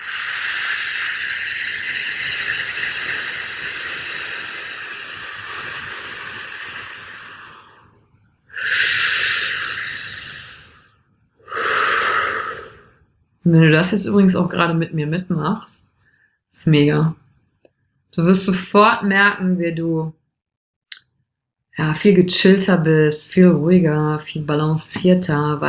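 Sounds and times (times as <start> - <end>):
deep breathing in and out: 0.0 - 13.1, 16.0 - 16.5
speech: 13.5 - 15.8, 16.6 - 17.2, 18.2 - 20.2, 21.8 - 25.6.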